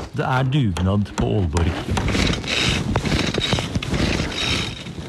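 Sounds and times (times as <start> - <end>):
speech: 0.2 - 2.3
diesel brush cutter failing to start: 1.5 - 5.0.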